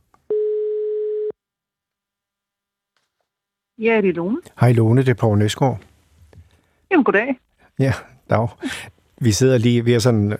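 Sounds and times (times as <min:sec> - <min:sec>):
telephone ringing tone as a call goes through: 0:00.3 - 0:01.4
speech: 0:03.8 - 0:05.9, 0:06.9 - 0:10.3.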